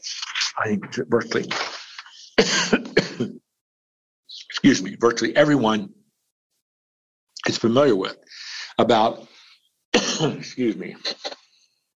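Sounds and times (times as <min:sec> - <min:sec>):
speech: 0:00.6 - 0:01.8, 0:03.2 - 0:03.4, 0:04.6 - 0:06.0, 0:07.4 - 0:09.3, 0:10.2 - 0:11.2
person clearing throat in rough raspy bursts: 0:02.3 - 0:03.4, 0:10.0 - 0:11.4.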